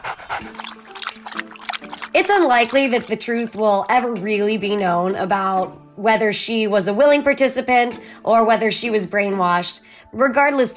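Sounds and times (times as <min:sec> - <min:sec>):
dog panting: 0:00.0 - 0:03.2
speech: 0:02.2 - 0:10.7.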